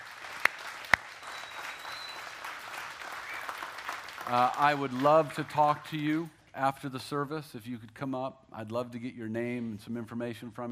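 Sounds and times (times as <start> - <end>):
congregation applauding: 0.0 - 6.0
speech: 4.3 - 10.7.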